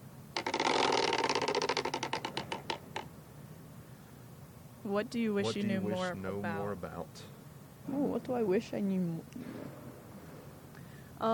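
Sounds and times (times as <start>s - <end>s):
question wheel spinning: 0.4s - 3.1s
speech: 4.9s - 9.9s, 11.2s - 11.3s.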